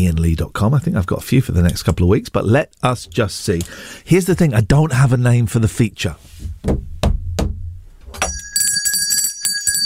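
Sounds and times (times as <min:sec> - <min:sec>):
speech: 0:00.0 - 0:06.8
dull heavy knocks: 0:06.5 - 0:07.8
bright bell ringing: 0:08.2 - 0:09.8.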